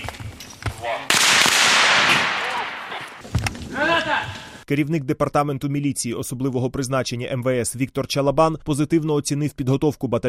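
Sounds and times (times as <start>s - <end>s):
live ammunition gunfire during police hostage-rescue training: 1.1s - 3.2s
speech: 4.7s - 10.2s.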